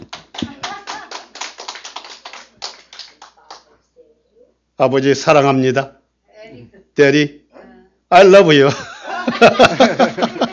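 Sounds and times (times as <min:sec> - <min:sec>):
audience clapping: 0:00.0 - 0:03.7
speech: 0:04.8 - 0:06.0, 0:07.0 - 0:07.4, 0:08.1 - 0:10.4
laughter: 0:08.7 - 0:10.5.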